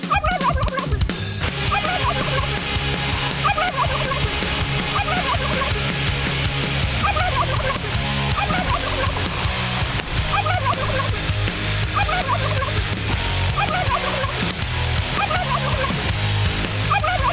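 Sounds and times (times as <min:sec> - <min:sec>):
chorus of many turkeys gobbling: 0:00.0 - 0:02.5, 0:03.3 - 0:06.0, 0:06.9 - 0:11.3, 0:11.9 - 0:12.9, 0:13.5 - 0:14.4, 0:15.2 - 0:16.0, 0:16.9 - 0:17.3
laughter: 0:00.0 - 0:17.3.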